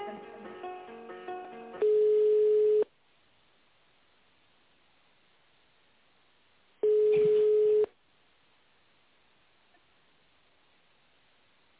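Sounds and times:
steady low-pitched telephone call tone when placing a call: 1.8s - 2.9s, 6.8s - 7.9s.

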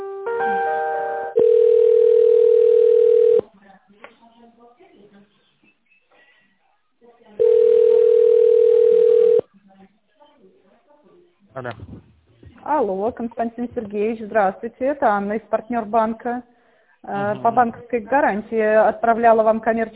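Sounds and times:
telephone ringback tone as a call is being connected: 0.6s - 3.4s, 7.4s - 9.4s
speech: 12.8s - 19.9s.

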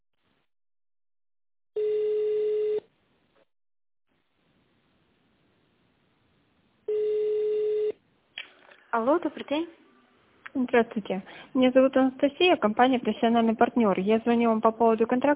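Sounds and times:
telephone ringback tones while waiting for an operator: 1.8s - 2.9s, 6.9s - 8.0s
speech: 9.0s - 9.8s, 10.5s - 15.3s.

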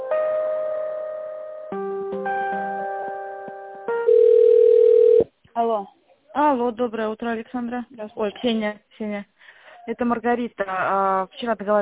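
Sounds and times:
electronic telephone tones while an office call is transferred: 4.0s - 5.3s
speech: 5.6s - 11.7s.

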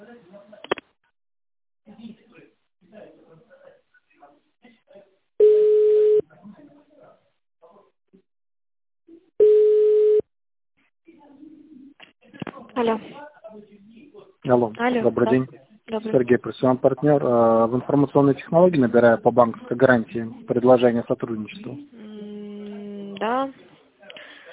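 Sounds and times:
telephone line tones while a call is being transferred: 5.4s - 6.2s, 9.4s - 10.2s
speech: 14.5s - 22.0s.

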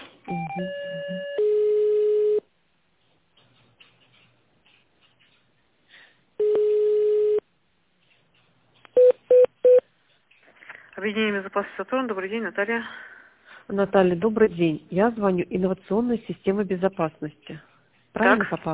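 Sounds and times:
long steady telephone line tone: 0.3s - 2.5s, 6.4s - 7.4s
speech: 0.6s - 0.8s, 11.0s - 13.1s, 13.7s - 18.7s.

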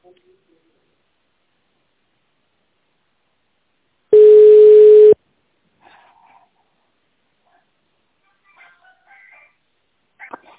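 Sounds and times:
mid-pitched electronic telephone line tone during call transfer: 4.2s - 5.2s.

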